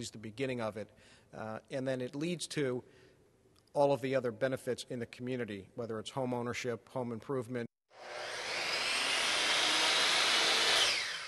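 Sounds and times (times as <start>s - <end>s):
speech: 0.0s - 3.0s, 3.7s - 8.3s
power saw cutting wood: 7.9s - 11.2s.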